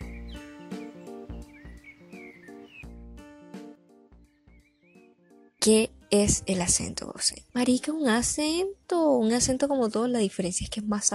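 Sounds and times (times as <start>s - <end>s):
small birds chirping in a backyard: 0.0s - 3.0s, 4.2s - 5.7s
speech: 5.6s - 11.1s.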